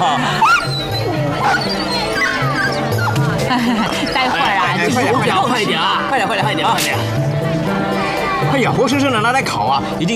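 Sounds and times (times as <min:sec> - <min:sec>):
laughter: 0:00.0 - 0:07.1
dog barking, yipping and whimpering: 0:00.4 - 0:03.3
speech: 0:03.6 - 0:10.1.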